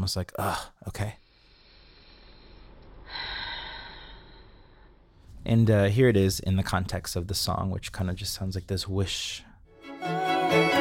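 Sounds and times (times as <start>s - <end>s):
speech: 0.0s - 1.2s, 5.4s - 10.7s
person exhaling: 1.2s - 5.3s.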